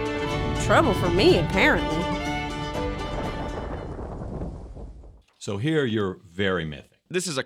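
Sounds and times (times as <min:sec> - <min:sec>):
heavy rolling thunder: 0:00.1 - 0:05.2
speech: 0:00.7 - 0:02.0, 0:05.4 - 0:07.4.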